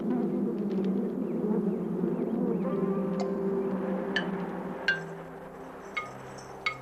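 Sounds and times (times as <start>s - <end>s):
many honeybees buzzing: 0.0s - 6.8s
light clinking ticks: 4.2s - 6.8s.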